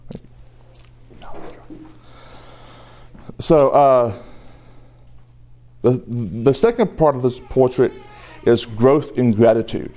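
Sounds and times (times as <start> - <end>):
person sipping water: 0.1 - 2.2
gentle swallow: 1.1 - 2.0
speech: 3.4 - 4.3, 5.8 - 9.9.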